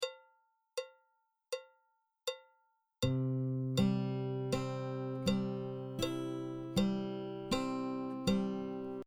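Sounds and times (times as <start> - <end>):
guitar arpeggio: 3.1 - 9.0.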